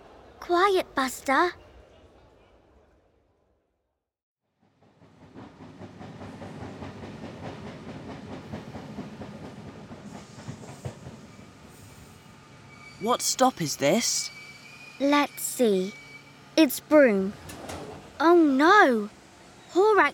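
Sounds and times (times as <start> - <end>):
speech: 0.4 - 1.6, 13.0 - 14.4, 15.0 - 16.0, 16.6 - 17.5, 18.2 - 20.1
train arriving on rails: 4.6 - 20.1.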